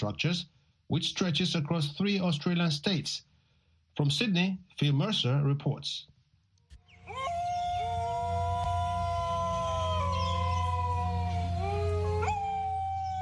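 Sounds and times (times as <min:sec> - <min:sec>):
speech: 0:00.0 - 0:03.3, 0:04.0 - 0:06.1
dingoes howling in chorus: 0:06.9 - 0:13.1.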